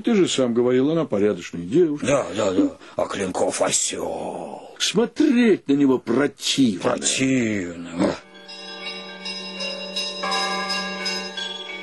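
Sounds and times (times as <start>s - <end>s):
speech: 0.0s - 8.3s
church bells ringing at night: 8.2s - 11.8s.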